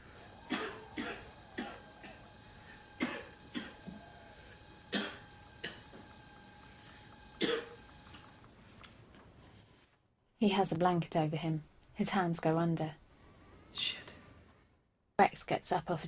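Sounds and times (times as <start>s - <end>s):
man coughing: 0.5s - 2.3s, 3.0s - 3.9s, 4.9s - 6.0s, 7.4s - 7.8s
speech: 10.4s - 13.0s, 13.8s - 14.1s, 15.3s - 16.0s.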